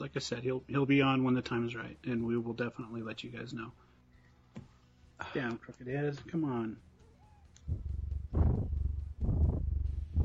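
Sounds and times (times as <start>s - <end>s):
speech: 0.1s - 3.9s, 5.2s - 6.9s, 7.7s - 7.9s
female cat purring loudly: 7.7s - 10.2s.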